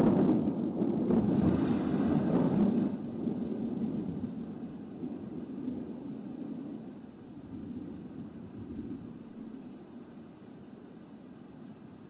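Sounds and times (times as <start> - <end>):
deep rolling thunder rumbling: 0.0 - 11.0.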